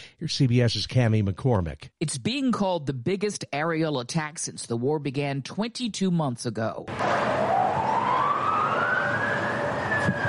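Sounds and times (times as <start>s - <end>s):
broad wash of noise: 0.0s - 10.2s
speech: 0.2s - 7.8s
air raid sirens wailing: 6.9s - 10.2s.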